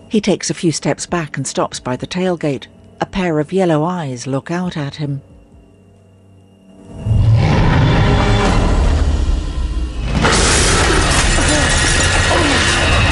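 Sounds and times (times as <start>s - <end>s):
speech: 0.1s - 5.3s
deep rumbling impact: 6.9s - 13.1s
glass debris crunching: 10.2s - 13.1s.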